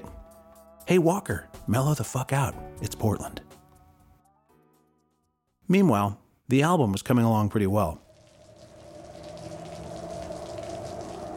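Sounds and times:
speech: 0.9s - 3.5s, 5.7s - 8.0s
steady rain pattering on a surface: 8.0s - 11.3s.

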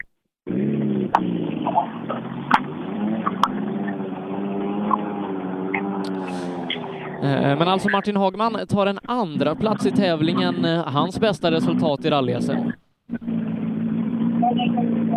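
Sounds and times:
rally car engine roaring as it pulls away from start: 0.5s - 15.1s
sharp clicks and pops: 2.5s - 3.6s
speech: 7.2s - 13.3s, 14.5s - 15.1s.

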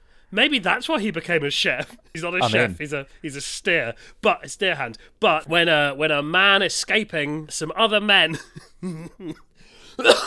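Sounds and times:
speech: 0.3s - 10.2s
person coughing: 2.4s - 2.8s, 10.0s - 10.2s.

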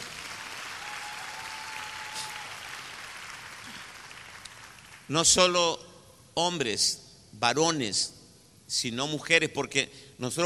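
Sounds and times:
large audience applauding: 0.0s - 5.1s
speech: 5.1s - 5.8s, 6.4s - 10.4s.

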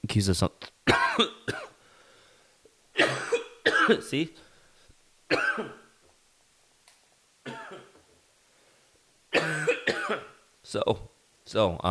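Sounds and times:
speech: 0.1s - 1.4s, 3.9s - 4.5s, 5.3s - 5.8s, 10.7s - 11.8s
several harsh coughs: 0.9s - 1.8s, 3.0s - 4.1s, 5.3s - 5.9s, 7.4s - 8.0s, 9.3s - 10.4s.

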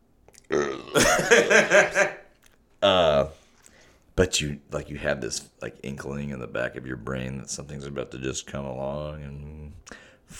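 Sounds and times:
person belching into the microphone: 0.4s - 1.2s
laughter: 1.0s - 2.2s
speech: 1.0s - 2.2s, 2.8s - 3.3s, 4.2s - 10.3s.

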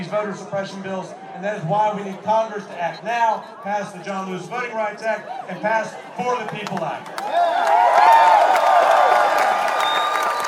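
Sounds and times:
speech: 0.1s - 8.3s
large crowd cheering and clapping at a Texas Democratic Party voting-rights rally: 6.2s - 10.4s
whoops and shouted voices at a voting-rights rally: 7.2s - 10.4s.

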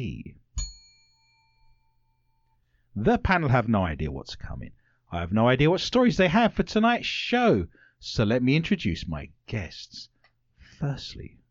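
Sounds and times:
speech: 0.0s - 0.4s, 3.0s - 10.1s, 10.8s - 11.4s
single bright bell ding: 0.6s - 2.6s.

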